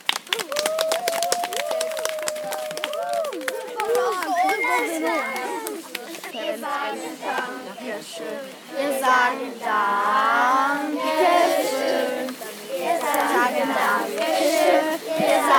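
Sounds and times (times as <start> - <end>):
group of children clapping: 0.0 - 6.3
young voices calling out and chattering: 1.7 - 15.5
speech: 6.9 - 12.1.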